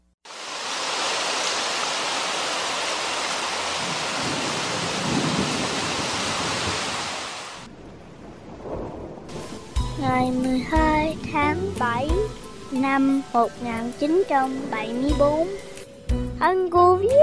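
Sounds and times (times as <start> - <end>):
heavy rain pouring: 0.3 - 15.8
low rumble of thunder: 3.8 - 6.9, 7.6 - 12.6
speech: 12.7 - 15.7, 16.4 - 17.2.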